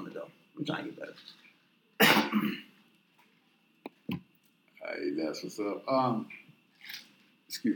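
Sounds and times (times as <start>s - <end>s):
speech: 0.2s - 1.4s, 2.0s - 2.7s, 4.8s - 7.7s
loud harsh cough: 2.0s - 2.8s.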